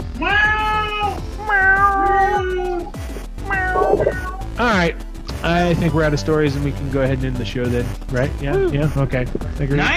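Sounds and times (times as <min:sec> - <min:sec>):
cat meowing: 0:00.2 - 0:04.4
speech: 0:04.6 - 0:05.0, 0:05.6 - 0:09.9.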